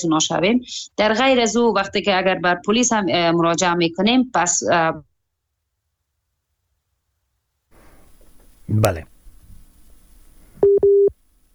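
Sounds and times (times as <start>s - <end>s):
speech: 0.0s - 5.1s, 8.7s - 9.1s
faint low noise: 0.0s - 11.5s
busy tone beeps after a dropped phone call: 10.6s - 11.1s.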